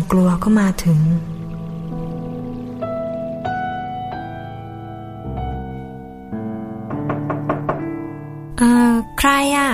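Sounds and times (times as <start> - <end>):
music: 0.0 - 9.7
speech: 0.1 - 1.3, 8.6 - 9.7
firm knocking on a door: 6.8 - 8.2.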